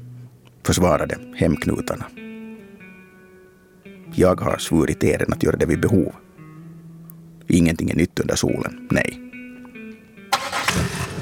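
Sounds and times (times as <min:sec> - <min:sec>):
speech: 0:00.7 - 0:02.2, 0:04.2 - 0:06.3, 0:07.5 - 0:09.2
car engine cranking and starting: 0:10.3 - 0:11.2.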